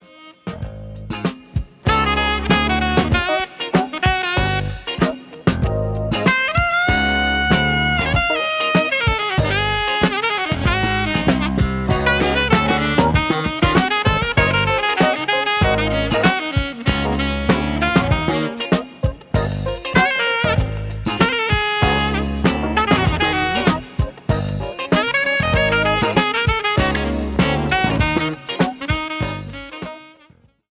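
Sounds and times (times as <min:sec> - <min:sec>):
saxophone: 0:00.0 - 0:30.6.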